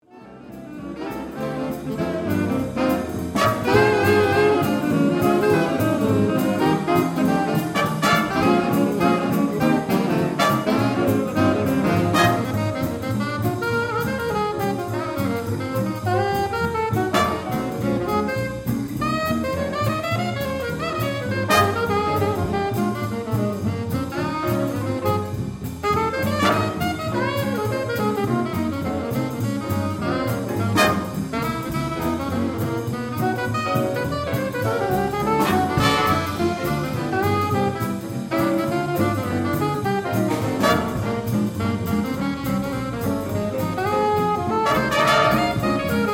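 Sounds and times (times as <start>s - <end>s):
big band swing music: 0.0s - 46.1s.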